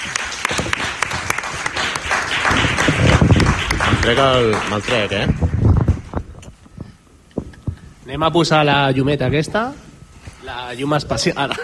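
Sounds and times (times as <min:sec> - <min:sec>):
loud audience applause with many hands clapping: 0:00.0 - 0:06.2
speech: 0:04.1 - 0:05.4, 0:08.1 - 0:09.8, 0:10.4 - 0:11.6.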